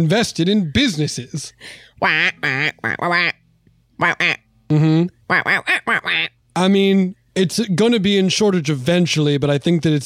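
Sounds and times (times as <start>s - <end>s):
speech: 0.0s - 3.4s, 4.0s - 10.0s
person's voice imitating duck quacks: 2.0s - 3.4s, 4.0s - 6.4s.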